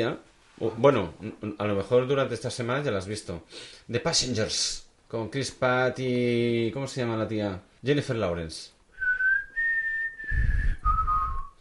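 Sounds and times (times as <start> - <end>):
speech: 0.0 - 8.8
person whistling a short tune: 9.0 - 11.5.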